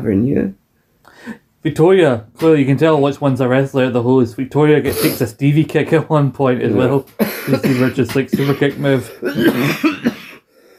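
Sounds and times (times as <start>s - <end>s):
speech: 0.0s - 0.6s, 1.2s - 10.0s
person recovering from a cold coughing: 7.1s - 10.5s.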